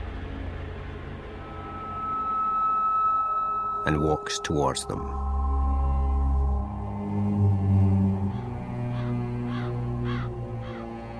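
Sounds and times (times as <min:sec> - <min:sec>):
low steady drone: 0:00.0 - 0:11.1
speech: 0:03.8 - 0:05.4
crows cawing: 0:08.2 - 0:11.1.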